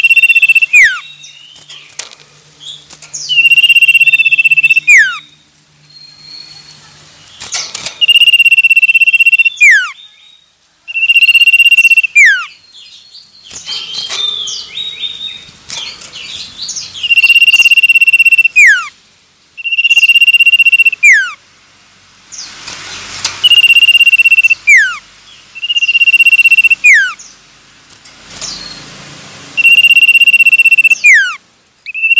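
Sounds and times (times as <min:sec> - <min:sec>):
male Common iora song: 0:00.0 - 0:02.0, 0:02.6 - 0:06.8, 0:07.4 - 0:15.5, 0:16.2 - 0:18.9, 0:19.6 - 0:21.4, 0:23.4 - 0:25.0, 0:25.6 - 0:27.3, 0:29.6 - 0:32.1.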